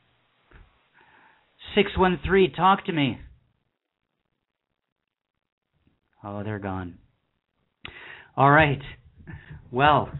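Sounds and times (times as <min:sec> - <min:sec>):
speech: 0:01.8 - 0:03.3, 0:06.2 - 0:07.0, 0:08.4 - 0:10.1
caller breathing over a phone line: 0:07.9 - 0:08.4.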